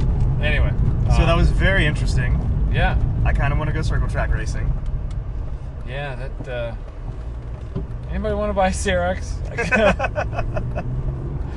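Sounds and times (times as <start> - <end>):
road rumble inside a moving BMW M3: 0.0 - 11.5
speech: 1.6 - 4.9, 5.9 - 6.9, 8.1 - 11.1
laughter: 9.5 - 11.0.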